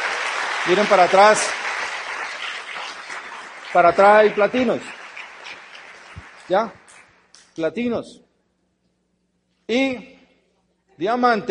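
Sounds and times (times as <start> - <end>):
crowd applauding: 0.0 - 7.5
speech: 0.6 - 1.6, 3.7 - 5.0, 6.5 - 6.8, 7.6 - 8.2, 9.7 - 10.2, 11.0 - 11.4.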